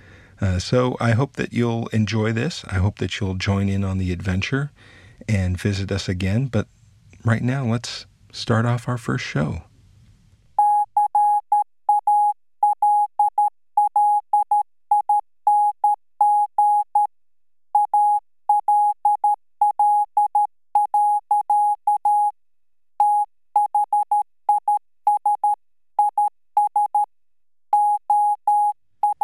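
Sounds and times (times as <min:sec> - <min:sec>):
speech: 0:00.4 - 0:09.7
high-pitched naval Morse code radio tone: 0:10.6 - 0:17.1, 0:17.7 - 0:22.4, 0:23.0 - 0:27.1, 0:27.7 - 0:29.2.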